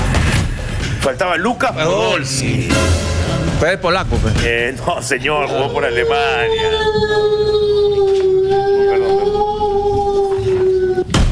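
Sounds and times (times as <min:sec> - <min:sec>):
speech: 0:01.0 - 0:09.1
single long wolf howl: 0:05.3 - 0:11.2.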